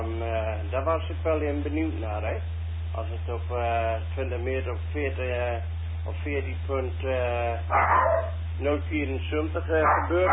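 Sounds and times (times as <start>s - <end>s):
steady low hum: 0.0s - 10.3s
speech: 0.7s - 10.3s
dog frightened by fireworks yelping and barking: 7.7s - 8.4s, 9.8s - 10.3s.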